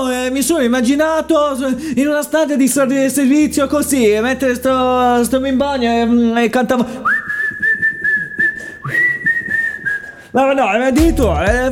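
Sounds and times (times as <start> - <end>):
speech: 0.0 - 7.2, 10.3 - 11.7
person whistling a tune: 7.0 - 10.4.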